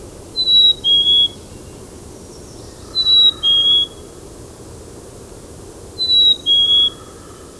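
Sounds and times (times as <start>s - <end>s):
Black-capped Chickadee calling: 0.3s - 4.2s, 6.0s - 7.5s.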